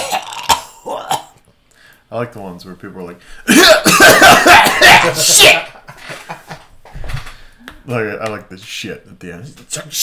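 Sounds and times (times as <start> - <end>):
voice imitating a smoker's hacking cough: 0.0 - 1.4, 3.5 - 5.6
speech: 2.1 - 6.4, 7.9 - 10.0
laughter: 3.9 - 6.8.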